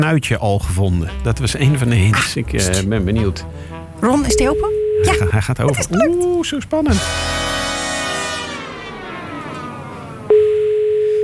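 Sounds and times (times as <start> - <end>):
speech: 0.0 - 7.3
telephone ringback tone while calling someone: 4.3 - 5.3, 10.3 - 11.2
falling sweep tone: 6.9 - 11.0.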